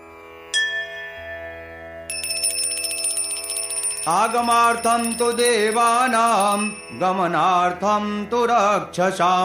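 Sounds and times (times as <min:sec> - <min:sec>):
hand bell rung during Hindu worship: 0:02.1 - 0:07.5
speech: 0:04.0 - 0:09.4.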